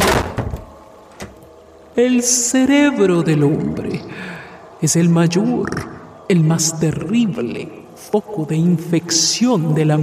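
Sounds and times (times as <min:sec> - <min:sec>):
door shutting with a solid thud: 0:00.0 - 0:01.6
speech: 0:02.0 - 0:10.0.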